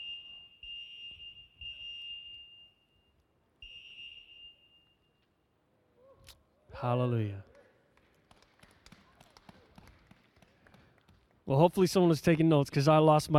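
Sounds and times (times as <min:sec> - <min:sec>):
high-pitched fire alarm blaring: 0:00.0 - 0:05.3
speech: 0:06.8 - 0:07.5, 0:11.5 - 0:13.3.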